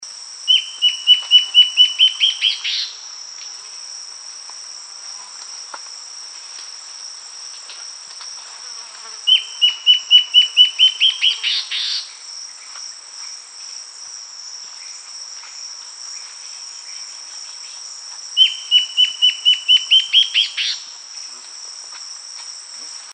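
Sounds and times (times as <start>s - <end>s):
antbird calling: 0.5s - 3.0s, 9.3s - 12.2s, 18.4s - 20.9s.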